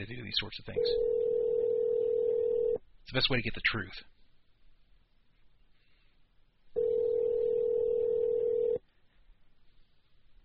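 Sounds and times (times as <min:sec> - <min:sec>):
speech: 0:00.0 - 0:01.2, 0:03.1 - 0:04.1
ringback tone on an unanswered outgoing phone call: 0:00.8 - 0:02.8, 0:06.8 - 0:08.8.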